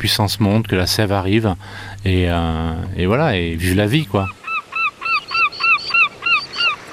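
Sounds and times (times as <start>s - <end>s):
speech: 0.0s - 4.4s
bird honking calls outdoors: 3.7s - 6.9s.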